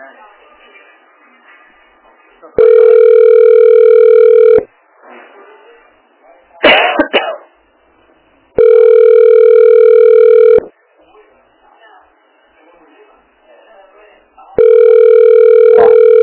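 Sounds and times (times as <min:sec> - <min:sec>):
ringback tone of an unanswered phone call to a health clinic: 0:02.6 - 0:04.7, 0:08.6 - 0:10.6, 0:14.6 - 0:16.2.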